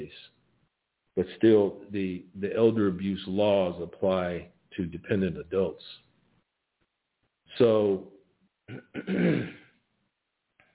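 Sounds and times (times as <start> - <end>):
speech: 1.2 - 6.0, 7.5 - 8.1, 8.7 - 9.6
throat clearing: 8.7 - 9.7.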